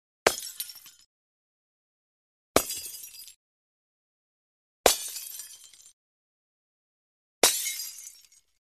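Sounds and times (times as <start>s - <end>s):
distant glass light bulb breaking, smashing and shattering: 0.3s - 1.1s, 2.6s - 3.4s, 4.9s - 6.0s, 7.4s - 8.6s.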